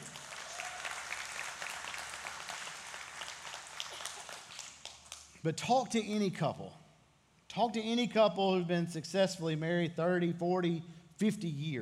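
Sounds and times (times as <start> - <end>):
audience applauding a couple: 0.0 - 5.3
speech: 5.4 - 6.8, 7.6 - 11.7.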